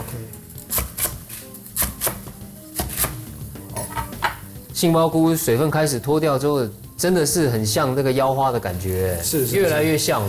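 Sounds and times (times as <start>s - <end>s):
kitchen knife slicing napa cabbage on a board: 0.7s - 3.2s
speech: 4.8s - 10.2s.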